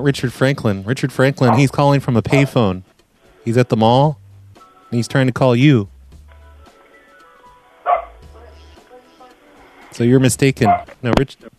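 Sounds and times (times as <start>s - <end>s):
speech: 0.0s - 4.2s, 4.9s - 5.9s, 9.9s - 11.5s
dog barking: 1.4s - 1.7s, 2.3s - 2.6s, 7.9s - 8.2s, 10.6s - 10.9s.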